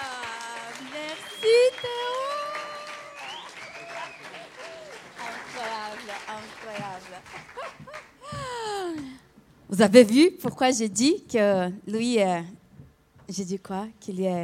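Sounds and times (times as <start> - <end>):
crowd whooping and cheering: 0.0 - 5.8
audience clapping: 0.0 - 9.1
speech: 9.7 - 12.6, 13.3 - 14.4.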